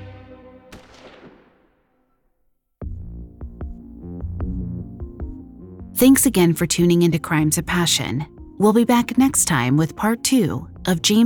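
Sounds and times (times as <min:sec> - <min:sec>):
music: 0:00.0 - 0:01.2, 0:02.8 - 0:11.2
pistol shot: 0:00.7 - 0:02.1
speech: 0:06.0 - 0:11.2.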